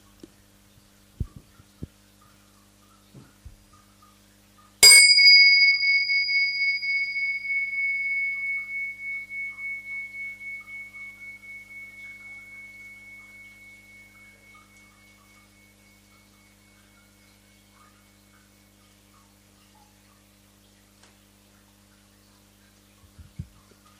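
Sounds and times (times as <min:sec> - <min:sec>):
soft taps and thumps: 0:03.1 - 0:03.6
meditation bell struck and ringing: 0:04.8 - 0:18.8.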